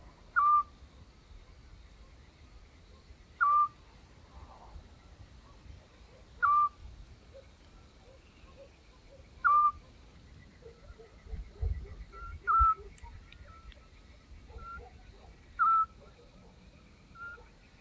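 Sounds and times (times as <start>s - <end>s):
Eurasian scops owl giving whistled hoots: 0.3s - 0.7s, 3.4s - 3.8s, 6.4s - 6.8s, 9.4s - 9.9s, 10.6s - 13.9s, 14.5s - 15.0s, 15.6s - 16.1s, 17.2s - 17.5s.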